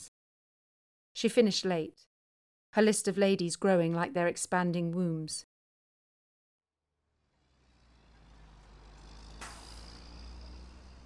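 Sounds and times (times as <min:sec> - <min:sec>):
speech: 0:01.2 - 0:02.1, 0:02.8 - 0:05.5
deep bus engine drone: 0:06.8 - 0:11.0
bus air brakes hissing: 0:07.4 - 0:11.0.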